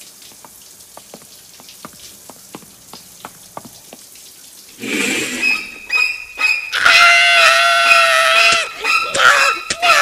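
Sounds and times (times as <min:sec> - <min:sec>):
faint ticking water drips: 0:00.0 - 0:09.9.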